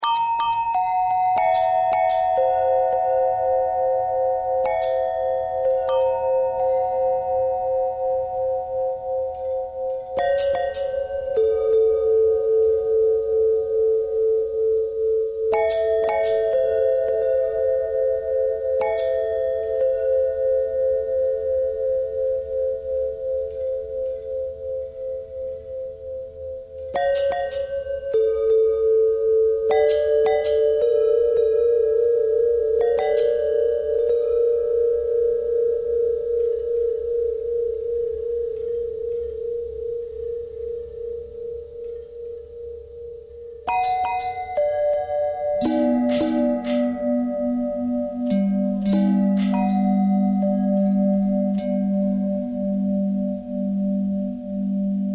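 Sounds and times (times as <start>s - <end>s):
long bell tones: 0.0s - 55.1s.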